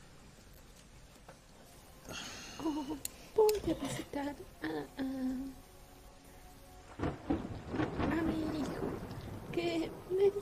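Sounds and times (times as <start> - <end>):
rain hiss during a late-night drive: 0.0 - 10.3
speech: 2.1 - 5.7, 9.6 - 10.3
heavy rumbling thunder bursts: 6.8 - 10.3.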